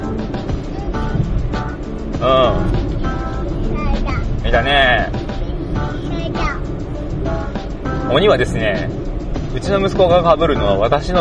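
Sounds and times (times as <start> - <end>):
garbage collection truck passing by: 0.0 - 11.2
speech: 2.2 - 2.7, 4.5 - 5.2, 8.1 - 11.2.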